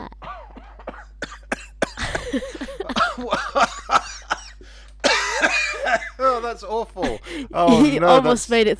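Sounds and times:
harsh coughing fit: 0.0s - 8.0s
speech: 2.3s - 3.4s, 6.6s - 8.7s
strained wheezy breaths: 4.6s - 5.0s, 7.2s - 7.6s.

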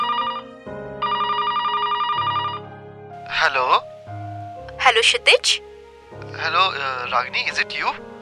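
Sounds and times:
phone ringing on an outgoing call with electronic ringtone: 0.0s - 2.7s
speech: 3.4s - 3.9s, 4.9s - 5.7s, 6.4s - 8.1s.

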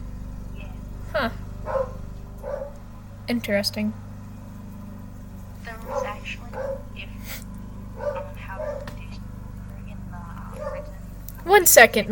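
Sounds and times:
low steady hum: 0.0s - 12.1s
speech: 1.2s - 1.4s, 3.3s - 4.0s, 11.5s - 12.1s
female dog barking: 1.6s - 2.8s, 5.8s - 7.2s, 7.9s - 9.2s, 10.5s - 11.0s.

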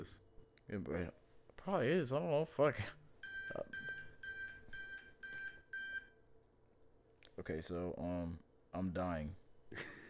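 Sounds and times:
speech: 0.0s - 3.8s, 7.4s - 9.9s
faint noise: 0.0s - 10.0s
phone alarm beeping: 3.2s - 6.2s.

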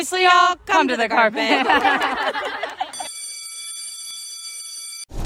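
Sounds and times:
speech: 0.1s - 2.7s
laughter: 1.3s - 3.1s
bell ringing in a sustained electronic tone: 2.9s - 5.1s.

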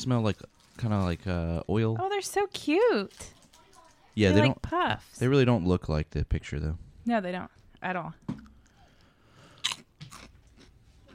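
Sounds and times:
speech: 0.0s - 3.4s, 4.2s - 8.4s
soft chewing crunches of snack chips: 9.4s - 11.1s
person biting into a crispy Chipster snack chip: 9.6s - 11.1s.

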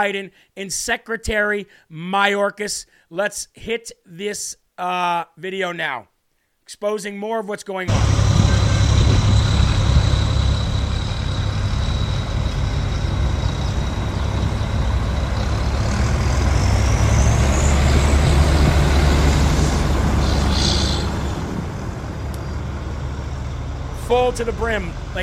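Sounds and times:
speech: 0.0s - 6.1s, 6.7s - 8.2s, 24.2s - 25.2s
heavy engines of loaded buses rumbling: 7.9s - 25.2s
thin high whine: 7.9s - 25.2s.

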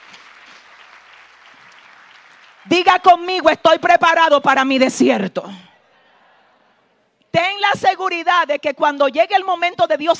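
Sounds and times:
crowd applauding: 0.0s - 2.8s
speech: 2.6s - 5.7s, 7.3s - 10.1s.

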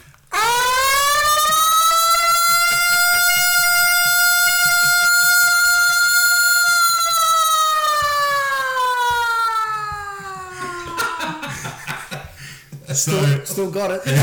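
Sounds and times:
man's voice imitating a siren wail: 0.3s - 11.6s
laughter: 9.0s - 14.2s
breathy noise from a man's voice: 10.4s - 13.4s, 14.0s - 14.2s
speech: 13.1s - 14.2s.

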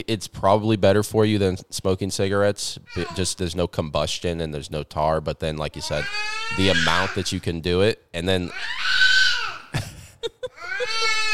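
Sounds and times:
speech: 0.0s - 9.1s
baby boy squealing happily: 2.9s - 3.4s, 5.8s - 7.4s, 8.5s - 9.8s, 10.5s - 11.3s.

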